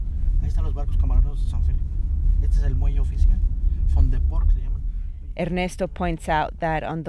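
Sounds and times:
car driving along a coastline heard from inside: 0.0s - 7.0s
speech: 0.6s - 4.8s, 5.4s - 7.0s.

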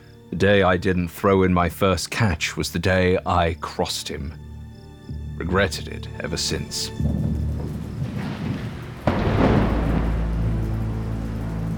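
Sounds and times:
speech: 0.3s - 4.5s, 5.5s - 7.8s
heavy rain pouring down: 6.2s - 11.7s
sudden sharp crack of thunder: 6.3s - 11.7s.

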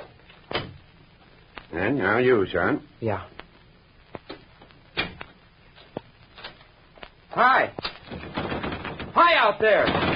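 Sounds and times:
speech: 1.7s - 3.4s, 7.4s - 7.9s, 9.2s - 10.1s
door pushed shut: 8.1s - 10.1s.

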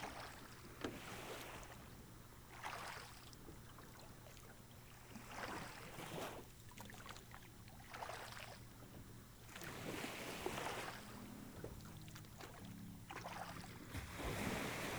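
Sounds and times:
low rumble of wind or water: 0.0s - 14.9s
small rowing boat surfing a shallow wave onto the beach: 9.5s - 14.9s
shallow waves washing onto the sandy beach of a small island lagoon: 13.9s - 14.9s.

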